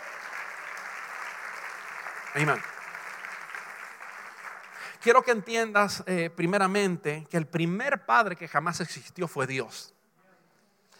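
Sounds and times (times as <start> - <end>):
congregation applauding loudly: 0.0 - 5.6
speech: 2.3 - 2.7, 5.0 - 10.0.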